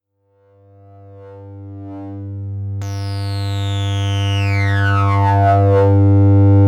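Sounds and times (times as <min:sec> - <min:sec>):
synthesizer with filter tracking: 0:02.8 - 0:06.5.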